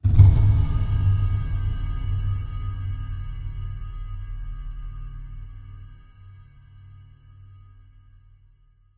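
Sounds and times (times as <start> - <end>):
cinematic impact: 0.0 - 3.8.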